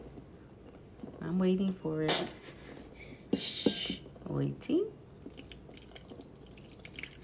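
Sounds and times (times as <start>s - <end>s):
speech: 1.3s - 2.6s, 4.3s - 5.0s
hot water poured slowly in a thin trickle into a mix: 5.3s - 7.2s
soft dripping and splashing of water: 5.3s - 7.2s.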